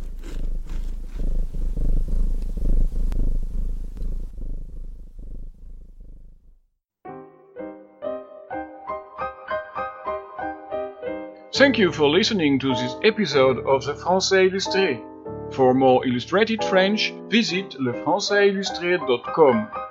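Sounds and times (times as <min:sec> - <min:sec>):
cat purring: 0:00.0 - 0:06.7
speech: 0:11.6 - 0:19.8.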